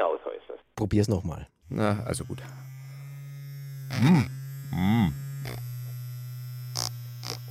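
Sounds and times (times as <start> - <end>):
speech: 0.5 - 2.7, 3.9 - 5.6
steady electric buzzing hum: 1.6 - 7.4.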